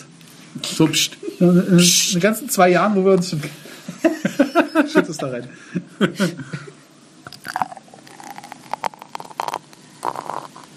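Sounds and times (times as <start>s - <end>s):
speech: 0.7s - 6.8s
laughter: 3.9s - 6.7s
beer pouring into a glass: 7.3s - 10.7s
fizzy crackling beer bubbles: 7.3s - 10.7s.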